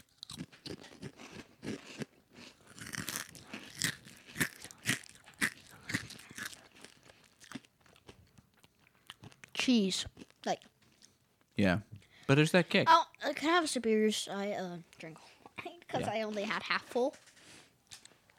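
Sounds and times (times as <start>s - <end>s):
crunching of 3D spicy ranch Doritos chips being bitten and chewed: 0.0s - 8.2s
speech: 9.7s - 10.7s, 11.6s - 15.3s, 15.9s - 17.2s.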